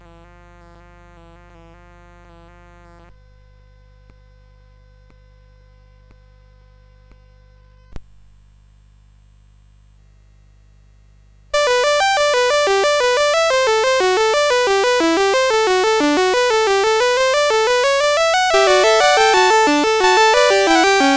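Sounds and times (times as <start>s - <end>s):
fugue in G major on a sound chip: 11.6s - 21.1s.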